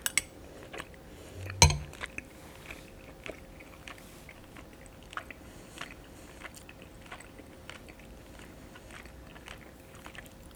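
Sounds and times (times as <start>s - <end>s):
soft chewing of tender beef chunks from galbitang soup: 0.2s - 10.5s
sharp knock: 1.4s - 1.9s.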